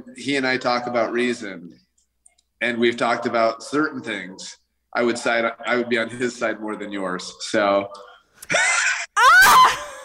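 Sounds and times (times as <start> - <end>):
speech: 0.1 - 1.8, 2.6 - 9.8
woman shrieking: 9.1 - 10.0.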